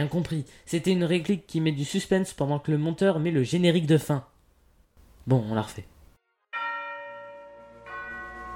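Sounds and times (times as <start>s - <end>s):
speech: 0.0s - 4.3s, 5.2s - 5.9s
doorbell chiming: 6.6s - 8.5s.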